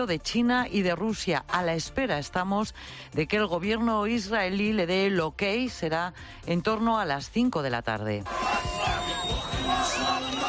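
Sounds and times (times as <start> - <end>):
speech: 0.0 - 10.4
large crowd of Palestinians cheering and celebrating in Gaza: 8.3 - 10.4
people shouting and whooping: 8.3 - 10.4.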